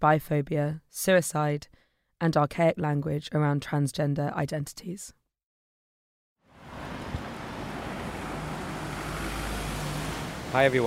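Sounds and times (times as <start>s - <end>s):
speech: 0.0s - 5.2s, 10.5s - 10.8s
street traffic with rumbling engines at a traffic island: 6.5s - 10.8s.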